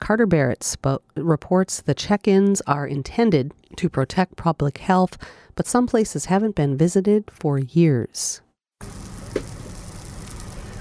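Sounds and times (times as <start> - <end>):
speech: 0.1 - 9.4
salmon patties sizzling on a grill at a seasonal food stand: 8.8 - 10.7.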